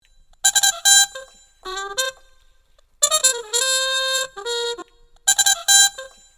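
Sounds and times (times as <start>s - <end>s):
muted trumpet: 0.4s - 6.3s.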